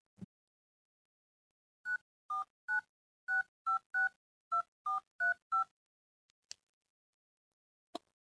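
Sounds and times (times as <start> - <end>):
touch-tone phone keypad beeps: 1.9 - 5.7.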